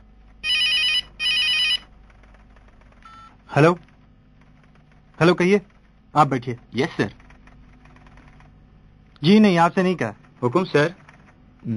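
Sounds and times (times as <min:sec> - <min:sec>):
mobile phone ringing in a coat pocket: 0:00.4 - 0:01.8
speech: 0:03.6 - 0:03.9, 0:05.2 - 0:07.2, 0:09.2 - 0:11.0.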